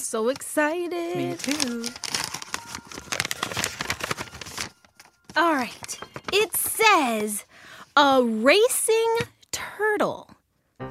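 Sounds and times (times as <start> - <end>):
speech: 0.1 - 2.4, 5.4 - 10.4
paper envelope being torn open: 1.1 - 7.2.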